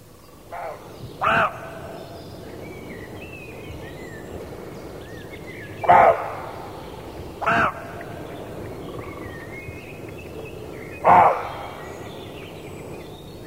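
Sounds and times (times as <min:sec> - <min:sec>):
male roe deer buck giving harsh single barks: 0:00.5 - 0:02.0, 0:05.8 - 0:06.7, 0:07.4 - 0:08.1, 0:11.0 - 0:11.8.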